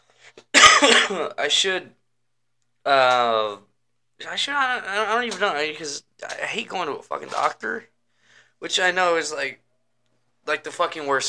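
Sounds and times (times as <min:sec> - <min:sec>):
person coughing from smoking weed: 0:00.5 - 0:01.4
speech: 0:00.8 - 0:02.0, 0:02.8 - 0:07.9, 0:08.6 - 0:09.6, 0:10.4 - 0:11.2.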